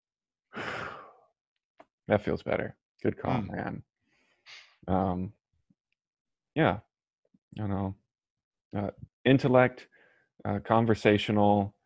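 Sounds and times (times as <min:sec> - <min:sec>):
deep audible exhale like a long sigh: 0:00.5 - 0:01.3
speech: 0:02.1 - 0:03.9, 0:04.5 - 0:05.4, 0:06.6 - 0:06.9, 0:07.5 - 0:08.0, 0:08.7 - 0:11.8.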